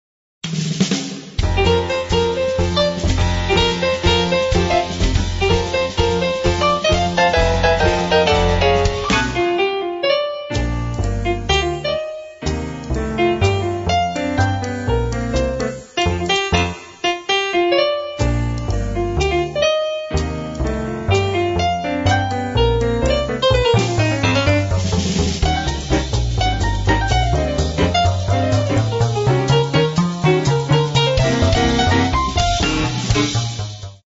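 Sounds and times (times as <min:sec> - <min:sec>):
happy background music: 0:01.4 - 0:34.0.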